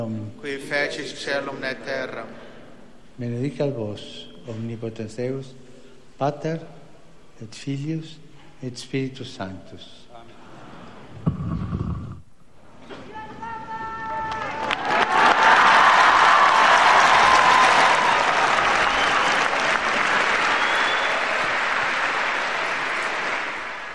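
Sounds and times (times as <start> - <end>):
speech: 0.0 - 2.5, 3.2 - 5.6, 6.2 - 6.8, 7.4 - 10.0
large audience applauding: 14.1 - 23.9.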